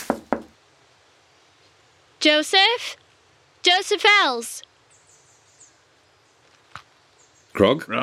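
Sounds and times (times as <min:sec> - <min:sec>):
knocking on a door: 0:00.0 - 0:00.6
speech: 0:02.2 - 0:03.0, 0:03.6 - 0:04.7, 0:07.6 - 0:08.0.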